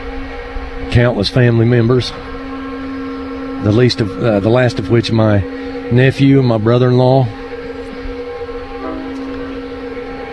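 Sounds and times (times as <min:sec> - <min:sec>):
low rumble: 0:00.0 - 0:10.3
train horn blowing at a crossing: 0:00.0 - 0:10.3
speech: 0:00.9 - 0:02.4, 0:03.6 - 0:07.4.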